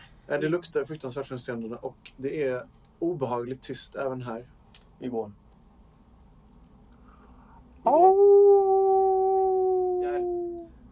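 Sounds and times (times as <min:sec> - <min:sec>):
speech: 0:00.3 - 0:05.4, 0:07.8 - 0:08.4
person imitating a howl: 0:07.8 - 0:10.8.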